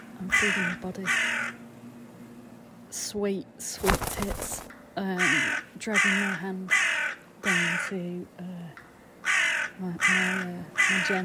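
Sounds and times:
crow cawing indoors in a room: 0:00.3 - 0:01.6, 0:03.9 - 0:07.9, 0:09.2 - 0:11.2
speech: 0:00.4 - 0:01.6, 0:02.9 - 0:08.9, 0:09.8 - 0:11.2.

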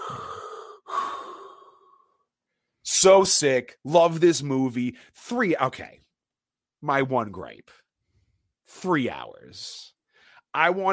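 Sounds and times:
heavy menacing raspy horror-villain breathing in a movie: 0:00.0 - 0:02.2
speech: 0:03.0 - 0:06.0, 0:06.8 - 0:07.8, 0:08.7 - 0:09.9, 0:10.5 - 0:10.9.

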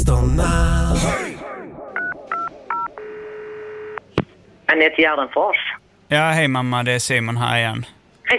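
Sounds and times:
speech: 0:00.1 - 0:01.3, 0:04.7 - 0:08.3
phone keypad beeps: 0:02.0 - 0:03.0
steady phone ringing or connecting tone: 0:02.0 - 0:04.0.

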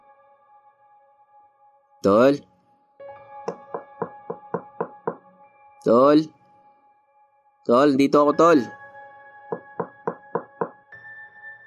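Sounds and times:
speech: 0:02.0 - 0:02.5, 0:05.8 - 0:06.4, 0:07.6 - 0:08.8
firm knocking on a door: 0:03.5 - 0:05.3, 0:09.5 - 0:10.8.

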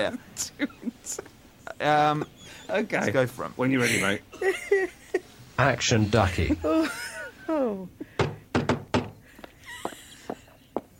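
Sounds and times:
speech: 0:00.0 - 0:05.0, 0:05.6 - 0:08.0
laughter: 0:03.7 - 0:05.4, 0:06.1 - 0:08.2
loud knocking on a door: 0:08.2 - 0:09.2.

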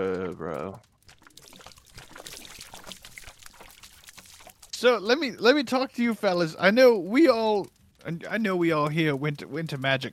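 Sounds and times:
speech: 0:00.0 - 0:00.9, 0:04.8 - 0:10.1
liquid pouring in a gurgling splashing stream: 0:00.6 - 0:05.4.

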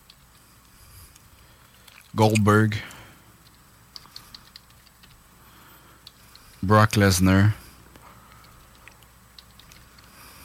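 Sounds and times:
speech: 0:02.1 - 0:03.0, 0:06.6 - 0:07.6
soft keystrokes on a computer keyboard: 0:03.4 - 0:05.2, 0:08.3 - 0:10.2.

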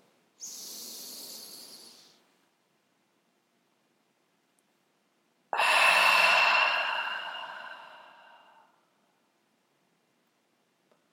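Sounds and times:
long exhale: 0:00.4 - 0:02.2, 0:05.6 - 0:08.8
slow deep inhale: 0:00.4 - 0:02.2, 0:05.6 - 0:08.9.

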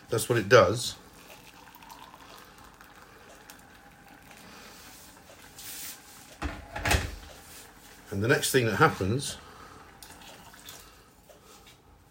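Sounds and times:
speech: 0:00.1 - 0:01.0, 0:08.1 - 0:09.4
boiling water poured into a cooking pan: 0:01.2 - 0:06.0, 0:10.0 - 0:11.0.

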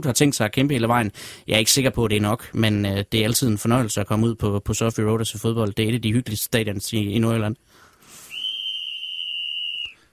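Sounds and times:
speech: 0:00.0 - 0:07.8
sharp shrill whistle blast: 0:08.2 - 0:10.0.

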